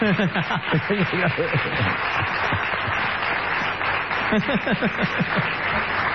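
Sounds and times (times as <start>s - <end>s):
laughter: 0.0s - 3.0s, 4.1s - 6.1s
crowd applauding for a birthday: 0.0s - 6.1s.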